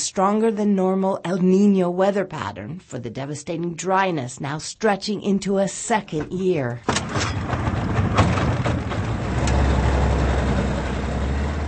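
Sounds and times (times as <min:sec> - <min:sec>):
speech: 0:00.1 - 0:07.4
small boat engine running on river: 0:08.5 - 0:11.6.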